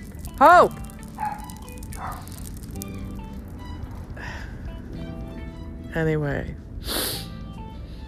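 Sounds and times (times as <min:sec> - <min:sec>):
speech: 0:00.4 - 0:00.8, 0:06.0 - 0:07.2
dog barking: 0:01.2 - 0:02.3.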